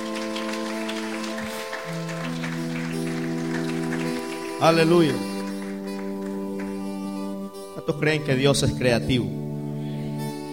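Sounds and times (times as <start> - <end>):
church congregation clapping in praise during a service: 0.0 - 7.8
sustained keyboard chords: 0.0 - 10.5
speech: 4.6 - 5.3, 7.9 - 9.4.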